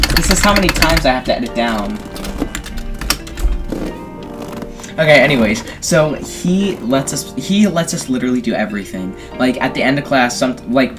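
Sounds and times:
keys clicking on a keyboard: 0:00.0 - 0:04.4
speech: 0:00.2 - 0:02.1, 0:05.0 - 0:10.9.

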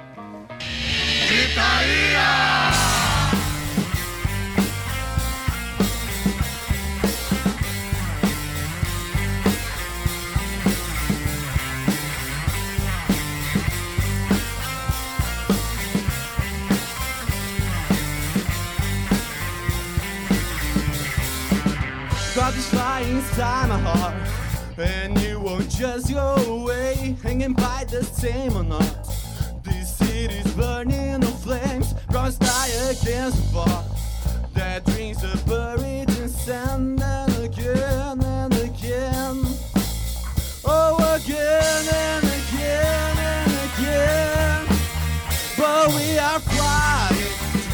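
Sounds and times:
recorded rock song with full-band guitars and driving drums: 0:00.0 - 0:47.7
speech: 0:24.8 - 0:29.0, 0:30.8 - 0:33.8.

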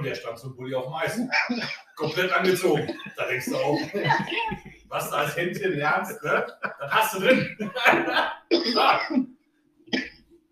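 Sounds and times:
speech: 0:00.0 - 0:09.3
laughter: 0:01.4 - 0:09.2
person coughing harshly: 0:02.2 - 0:04.6, 0:06.9 - 0:09.2.

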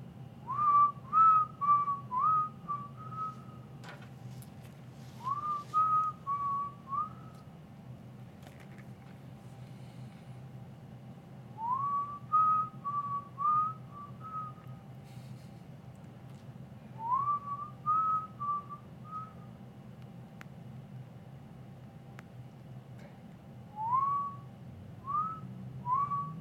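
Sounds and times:
steady low hum of noise: 0:00.0 - 0:26.4
person whistling a short melodic tune: 0:00.5 - 0:03.6, 0:05.2 - 0:07.4, 0:11.6 - 0:14.7, 0:17.0 - 0:19.5, 0:23.8 - 0:26.4.

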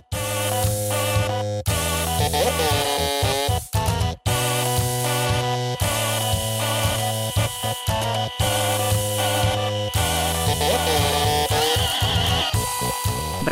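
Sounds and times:
music played by printers, post terminals, toothbrushes, epilators and irons: 0:00.0 - 0:13.5.

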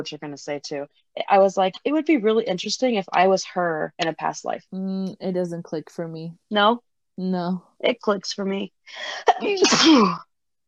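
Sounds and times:
speech: 0:00.0 - 0:10.3
person sneezing: 0:09.3 - 0:10.2.

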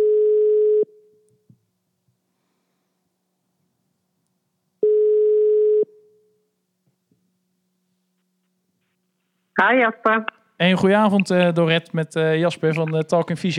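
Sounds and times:
telephone calling tone beeps: 0:00.0 - 0:00.9, 0:04.8 - 0:05.9
speech: 0:09.6 - 0:13.5.

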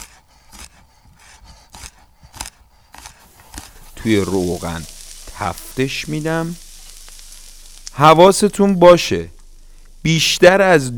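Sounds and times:
kitchen knife chopping garlic cloves: 0:00.0 - 0:04.5
speech: 0:04.0 - 0:06.6, 0:08.0 - 0:09.4, 0:10.0 - 0:10.9.

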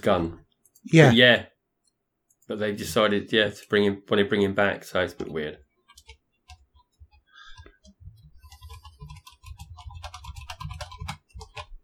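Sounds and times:
speech: 0:00.0 - 0:01.5, 0:02.5 - 0:05.6
rapid computer keyboard typing: 0:05.1 - 0:11.8.

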